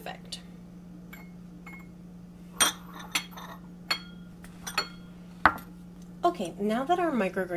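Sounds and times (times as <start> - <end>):
faint steady hum: 0.0 - 7.5
small ceramic bowls and dishes clinking against a surface: 1.1 - 1.9, 2.5 - 5.7
speech: 6.4 - 7.5.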